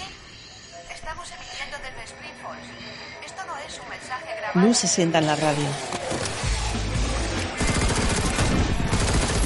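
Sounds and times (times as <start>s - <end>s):
speech: 1.1s - 6.4s
gunshots fired through a gap in a window: 7.5s - 9.4s.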